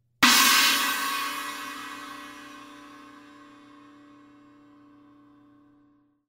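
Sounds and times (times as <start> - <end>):
china crash cymbal: 0.2 - 4.2.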